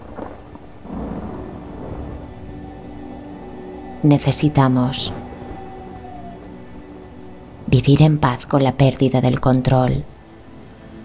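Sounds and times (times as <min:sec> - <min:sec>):
thunder rumbling in a summer storm: 0:00.0 - 0:10.2
steady downpour of rain in a summer storm: 0:00.0 - 0:11.0
speech: 0:04.0 - 0:05.2, 0:07.7 - 0:10.1.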